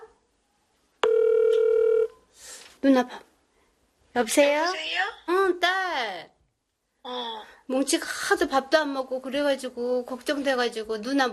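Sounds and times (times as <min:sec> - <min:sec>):
telephone ringback tone while placing a call: 0:01.0 - 0:02.2
speech: 0:02.8 - 0:03.3, 0:04.2 - 0:06.3, 0:07.0 - 0:11.3.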